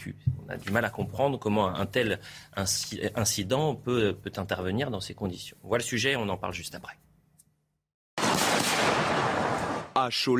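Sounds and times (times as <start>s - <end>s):
speech: 0.0s - 7.0s, 10.0s - 10.3s
fireworks exploding at a 14 July display: 8.2s - 10.0s.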